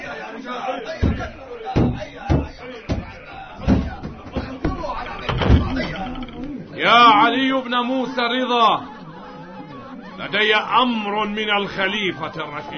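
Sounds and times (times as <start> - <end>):
crowd of agitated voices murmuring: 0.0 - 12.7
laughter: 0.0 - 12.7
house door battered in by horsemen: 1.0 - 6.5
speech: 6.8 - 8.9, 10.2 - 12.7.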